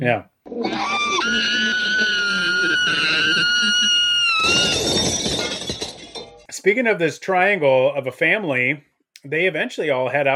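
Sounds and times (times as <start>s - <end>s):
speech: 0.0s - 1.5s, 6.6s - 10.3s
loud shrill human scream: 0.5s - 5.1s.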